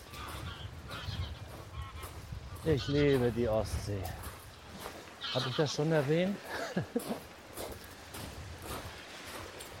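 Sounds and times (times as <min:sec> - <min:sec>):
large flock of geese flying overhead honking on the Baltic coast: 0:00.0 - 0:03.3, 0:05.1 - 0:06.0
speech: 0:02.6 - 0:04.2, 0:05.3 - 0:07.3
laughter: 0:06.4 - 0:07.3.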